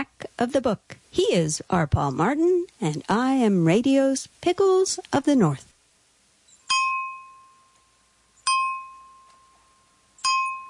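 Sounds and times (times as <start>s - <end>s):
speech: 0.0s - 5.7s
bell ringing: 6.7s - 7.8s, 8.4s - 10.6s.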